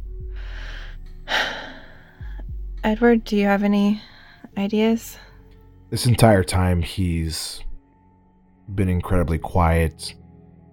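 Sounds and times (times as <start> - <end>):
person taking a deep breath: 0.2 - 2.5
speech: 2.8 - 5.3, 5.9 - 7.7, 8.7 - 10.2.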